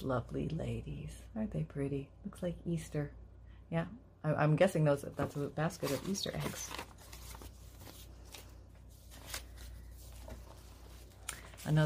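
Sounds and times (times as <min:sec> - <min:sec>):
speech: 0:00.0 - 0:06.9, 0:11.7 - 0:11.8
pages of a Victorian-style paper junk journal being flipped: 0:05.2 - 0:11.8.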